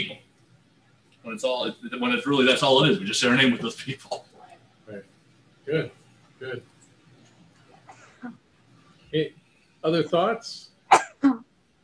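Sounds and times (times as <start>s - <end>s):
speech: 1.2s - 4.3s, 4.9s - 6.7s, 9.1s - 10.7s
sneeze: 10.9s - 11.3s.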